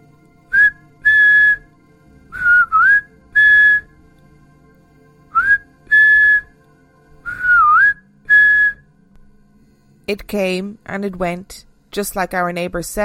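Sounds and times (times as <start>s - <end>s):
person whistling a short tune: 0.5s - 1.7s, 2.3s - 3.9s, 5.3s - 6.5s, 7.2s - 8.9s
speech: 10.1s - 13.0s.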